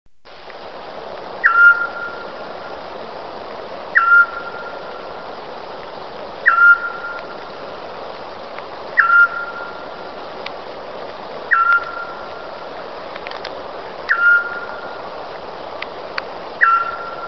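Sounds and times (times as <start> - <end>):
Eurasian scops owl calling: 1.4 - 2.8, 3.9 - 5.4, 6.4 - 7.6, 8.9 - 10.2, 11.4 - 13.0, 14.0 - 15.2, 16.6 - 17.2.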